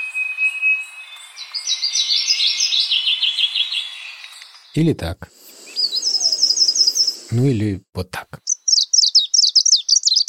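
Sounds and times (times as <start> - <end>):
leaf warbler singing high repeated chirping notes: 0.0 - 7.4, 8.4 - 10.2
speech: 4.8 - 5.4, 7.3 - 8.4.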